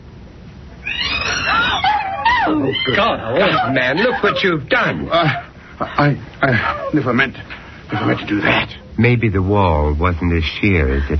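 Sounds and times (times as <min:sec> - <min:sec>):
startled cat yowling: 0:00.8 - 0:05.5
speech: 0:02.5 - 0:11.1.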